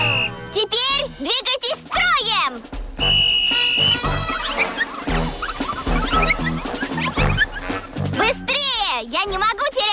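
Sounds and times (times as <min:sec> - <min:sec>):
whistle blast blown as a race start signal: 0:00.0 - 0:00.6, 0:03.0 - 0:06.5
busy bouncy music: 0:00.0 - 0:09.8
speech: 0:01.2 - 0:02.7
cartoonish sound effects: 0:03.9 - 0:08.5.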